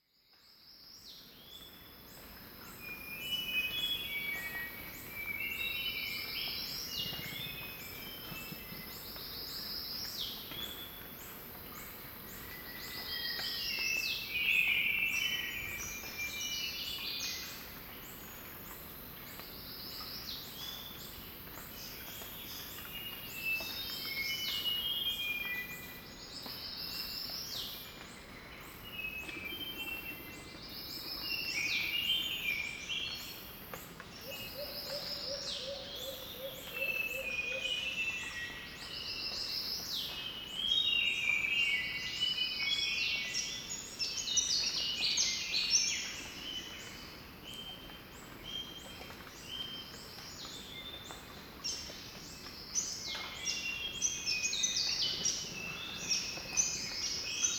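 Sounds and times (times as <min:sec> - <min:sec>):
melodious forest ambience: 0:00.5 - 0:57.5.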